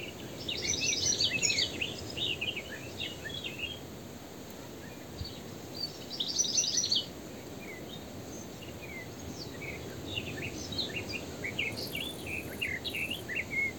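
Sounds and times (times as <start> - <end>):
steady broad background hiss: 0.0 - 13.7
European goldfinch (Carduelis carduelis) high tinkling twittering notes: 11.6 - 13.4.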